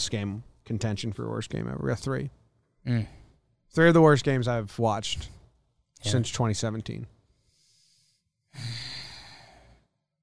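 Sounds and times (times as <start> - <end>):
speech: 0.0 - 5.4, 6.0 - 7.2, 8.5 - 9.0
heavy breathing into microphone: 7.3 - 9.8.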